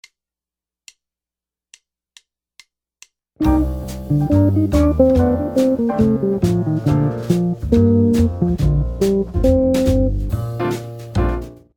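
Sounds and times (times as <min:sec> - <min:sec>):
jazz guitar lick: 0:03.4 - 0:10.9.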